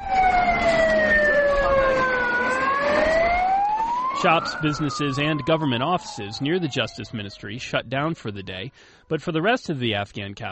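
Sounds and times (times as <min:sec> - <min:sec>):
constant rumble of street traffic in central Kabul: 0:00.0 - 0:07.4
ambulance siren wailing in central Kabul Afghanistan: 0:00.0 - 0:08.7
speech: 0:04.2 - 0:10.5.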